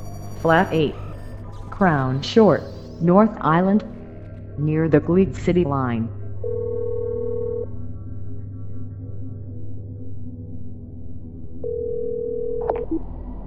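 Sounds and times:
constant low hum: 0:00.0 - 0:13.4
speech: 0:00.4 - 0:01.0, 0:01.8 - 0:03.9, 0:04.6 - 0:06.6
steady telephone ringing tone: 0:06.4 - 0:07.7, 0:11.6 - 0:12.8.

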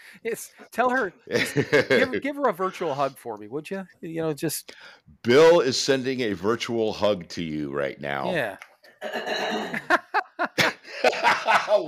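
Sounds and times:
speech: 0:00.1 - 0:10.0, 0:11.0 - 0:11.8
laughter: 0:01.3 - 0:02.2, 0:09.7 - 0:11.8
woman clearing her throat: 0:09.0 - 0:09.9.

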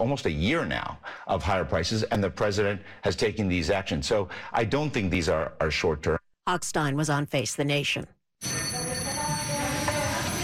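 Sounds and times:
speech: 0:00.0 - 0:08.5
ceremonial hand bell ringing at Italian new prime minister's handover ceremony: 0:08.4 - 0:10.4.

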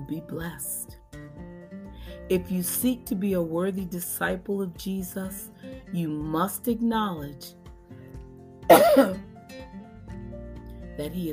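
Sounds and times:
speech: 0:00.1 - 0:01.0, 0:02.3 - 0:07.6, 0:08.7 - 0:09.3, 0:11.0 - 0:11.3
throat clearing and cough: 0:08.7 - 0:09.3.

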